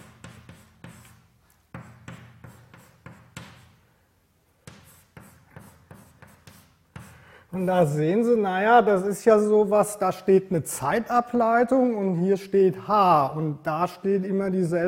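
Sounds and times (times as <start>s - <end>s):
taps and scratches of an equation being written during a physics lecture: 0.0s - 3.9s, 4.6s - 8.0s
speech: 7.5s - 14.8s.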